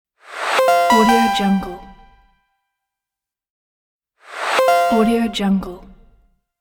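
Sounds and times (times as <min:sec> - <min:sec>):
message signal: 0:00.3 - 0:02.3, 0:04.3 - 0:06.2.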